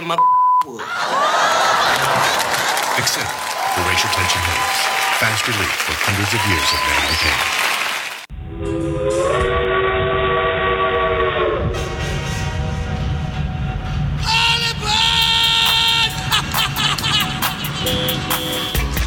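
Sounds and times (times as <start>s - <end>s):
speech: 0.1s - 7.6s
laughter: 0.6s - 7.5s, 16.0s - 18.0s
train rumbling past: 8.4s - 18.3s
train whistle blowing: 8.6s - 13.2s, 14.3s - 16.2s, 17.8s - 18.9s.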